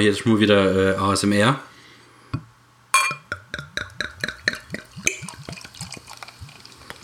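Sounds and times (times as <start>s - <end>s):
speech: 0.0s - 1.7s
unfiltered unpasteurized beer glugging from a bottle into small tasting glasses: 3.0s - 7.0s.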